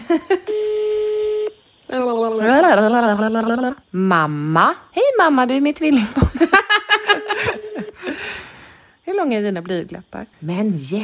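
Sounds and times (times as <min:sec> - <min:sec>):
speech: 0:00.1 - 0:00.7, 0:01.9 - 0:06.7, 0:09.2 - 0:11.0
ringback tone from an outgoing phone call: 0:00.5 - 0:01.6, 0:07.0 - 0:08.0.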